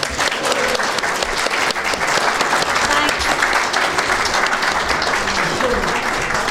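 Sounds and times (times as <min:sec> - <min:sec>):
faint crowd murmur: 0:00.0 - 0:06.4
large audience applause: 0:00.0 - 0:06.4
laughter: 0:00.0 - 0:06.4.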